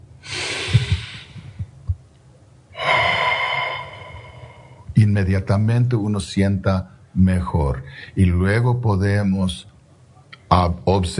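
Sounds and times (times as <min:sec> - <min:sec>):
slow deep breath in and out: 0:00.2 - 0:01.7, 0:02.7 - 0:04.9
speech: 0:05.0 - 0:09.7, 0:10.5 - 0:11.1.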